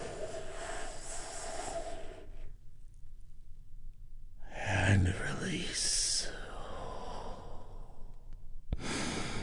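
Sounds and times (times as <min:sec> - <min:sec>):
deep breath in and out during guided relaxation: 0:00.0 - 0:02.6, 0:06.2 - 0:09.4
calm voice speaking: 0:04.4 - 0:06.9.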